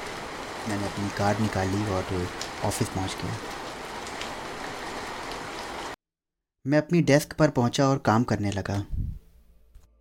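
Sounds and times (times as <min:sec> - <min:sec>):
steady rain pouring down: 0:00.0 - 0:06.0
speech: 0:00.7 - 0:03.6, 0:06.6 - 0:09.1.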